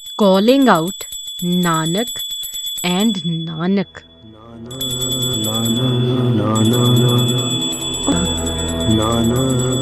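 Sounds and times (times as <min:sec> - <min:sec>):
small prayer bell ringing: 0:00.0 - 0:09.8
speech: 0:00.2 - 0:05.0, 0:06.0 - 0:07.2, 0:08.9 - 0:09.8
lama reciting prayers in a low droning voice: 0:03.0 - 0:09.8.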